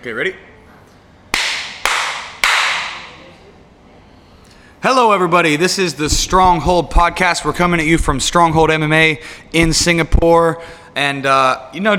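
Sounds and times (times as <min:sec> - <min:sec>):
speech: 0:00.0 - 0:00.5, 0:04.8 - 0:11.9
sharp hand claps to sync a recording: 0:01.3 - 0:03.2.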